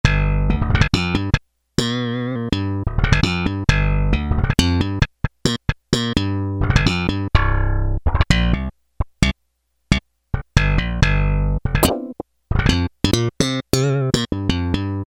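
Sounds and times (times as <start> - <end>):
Roland W-30 slap bass patch: 0.0 - 15.0.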